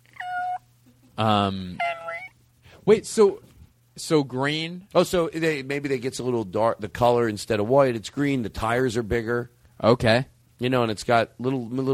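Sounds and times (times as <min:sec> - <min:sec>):
cat meowing: 0:00.0 - 0:00.7, 0:01.7 - 0:02.4
speech: 0:01.2 - 0:01.9, 0:02.8 - 0:11.9.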